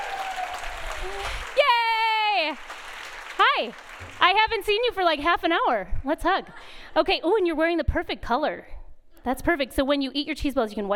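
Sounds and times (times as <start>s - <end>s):
audience applause: 0.0s - 4.3s
speech: 3.4s - 10.9s.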